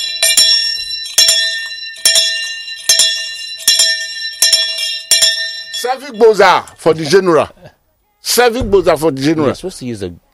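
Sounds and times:
bell ringing in celebration: 0:00.0 - 0:07.4
speech: 0:05.8 - 0:10.2.

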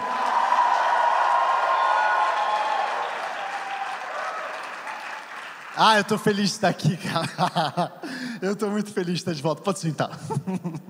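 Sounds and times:
large crowd cheering: 0:00.0 - 0:06.4
large crowd applauding: 0:00.0 - 0:06.7
speech: 0:05.8 - 0:10.8
laughter: 0:06.7 - 0:08.1, 0:10.1 - 0:10.8.

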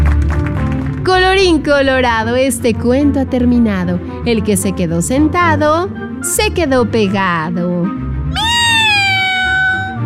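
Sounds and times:
speech: 0:01.0 - 0:08.4
long drawn-out cat meow: 0:08.3 - 0:10.0.

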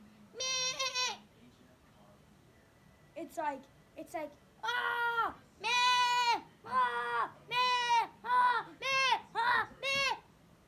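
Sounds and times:
speech: 0:03.2 - 0:05.7
voice imitating a goat bleating: 0:04.6 - 0:10.2.

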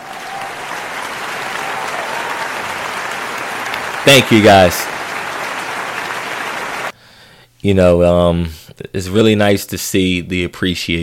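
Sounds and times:
crowd applauding: 0:00.0 - 0:07.0
speech: 0:04.0 - 0:04.9, 0:07.6 - 0:11.0.

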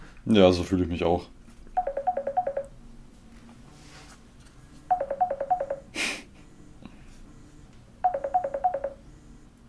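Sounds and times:
speech: 0:00.3 - 0:01.4
phone ringtone of an incoming call: 0:01.8 - 0:02.7, 0:04.9 - 0:05.9, 0:08.0 - 0:09.0.

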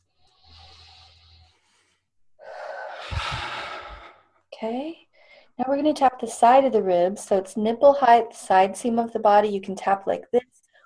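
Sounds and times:
deep breath in and out during an emotional freedom technique tapping session: 0:00.0 - 0:04.4, 0:05.1 - 0:05.6
speech: 0:04.6 - 0:05.0, 0:05.6 - 0:10.6.

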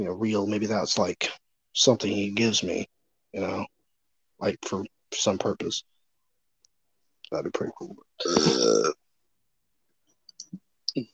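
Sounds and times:
speech: 0:00.0 - 0:03.8, 0:04.4 - 0:05.9, 0:07.3 - 0:09.0, 0:10.5 - 0:11.1
single loud rough burp: 0:08.2 - 0:09.0.

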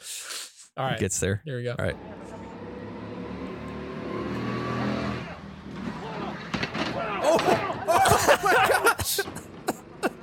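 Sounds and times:
speech: 0:00.8 - 0:02.2
small go-kart engine droning and revving on a go-kart track: 0:01.9 - 0:07.2
scraping and clattering impacts of a go-kart flipping over: 0:05.6 - 0:07.8
laughter: 0:07.0 - 0:10.2.

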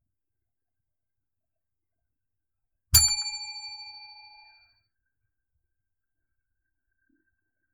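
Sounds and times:
bell strike rung for a break: 0:03.0 - 0:04.6.

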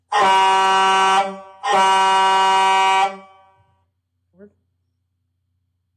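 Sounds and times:
loud horn honking: 0:00.1 - 0:03.7.

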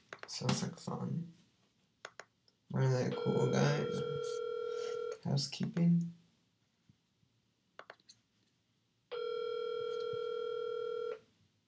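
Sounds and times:
speech: 0:00.3 - 0:01.4, 0:02.7 - 0:04.5, 0:05.2 - 0:06.2
telephone ringing on an unanswered outgoing call: 0:03.1 - 0:05.2, 0:09.1 - 0:11.2.

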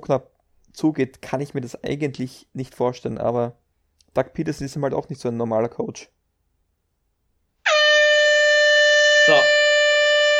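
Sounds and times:
speech: 0:00.1 - 0:03.6, 0:04.2 - 0:06.2, 0:09.3 - 0:09.6
loud sustained air horn blast at an American football game: 0:07.6 - 0:10.3.

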